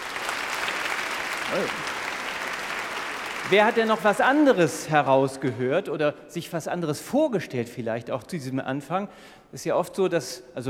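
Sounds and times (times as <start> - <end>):
audience clapping: 0.0 - 5.1
voiced exclamation: 1.4 - 1.9
speech: 1.5 - 1.9, 3.5 - 10.6.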